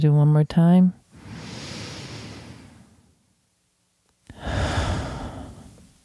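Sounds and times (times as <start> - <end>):
speech: 0.0 - 1.0
deep breath in and out: 1.2 - 3.2, 4.3 - 6.0.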